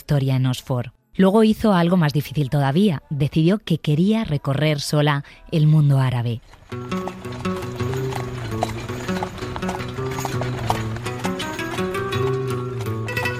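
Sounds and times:
speech: 0.1s - 7.6s
horse hooves clip-clopping in a walking rhythm: 6.4s - 13.3s
continuous tonal musical backdrop: 6.6s - 13.3s.

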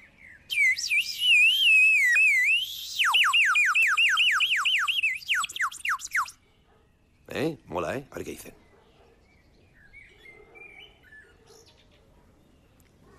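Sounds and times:
outdoor noise: 0.0s - 13.1s
wild birds chirping: 0.0s - 13.1s
water-filled clay bird whistle blown as a bird lure call: 0.5s - 6.4s
speech: 7.4s - 8.6s.

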